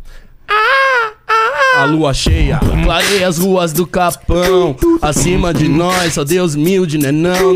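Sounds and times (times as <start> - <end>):
person imitating an eagle's cry with shrill screeches: 0.5 - 2.1
speech: 1.8 - 7.5.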